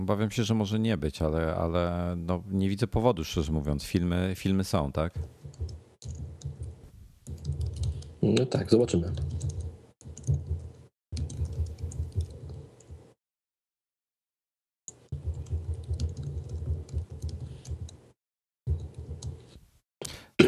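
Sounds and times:
speech: 0.0s - 5.4s, 8.2s - 9.4s
rapid computer keyboard typing: 5.4s - 8.4s, 9.0s - 13.0s, 14.9s - 18.0s, 18.7s - 19.5s.

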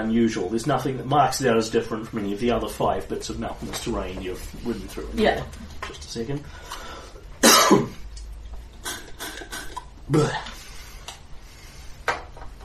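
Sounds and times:
speech: 0.0s - 6.8s, 7.7s - 8.0s, 10.1s - 10.6s
person coughing: 7.4s - 8.0s, 8.8s - 10.6s
throat noises: 8.7s - 11.2s.

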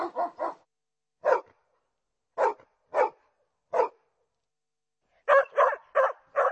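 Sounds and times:
dog barking: 0.0s - 1.6s, 2.4s - 4.0s, 5.2s - 6.4s.

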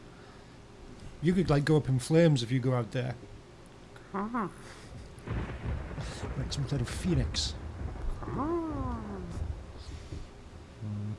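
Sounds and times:
speech: 1.2s - 3.4s, 4.1s - 4.8s, 6.5s - 7.6s, 8.2s - 8.6s
rolling thunder from a nearby lightning storm: 5.2s - 10.7s.

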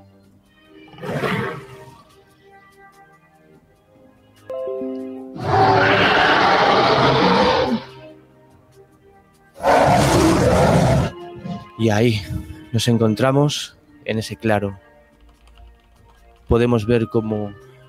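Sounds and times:
ferocious creature roaring: 5.4s - 8.0s, 9.6s - 11.6s
speech: 11.8s - 14.8s, 16.5s - 17.7s.

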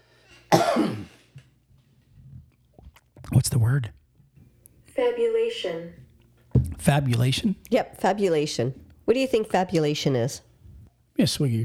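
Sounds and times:
harsh cough: 0.5s - 1.4s
speech: 3.6s - 4.0s, 5.0s - 6.0s, 6.8s - 10.5s, 11.2s - 11.6s.

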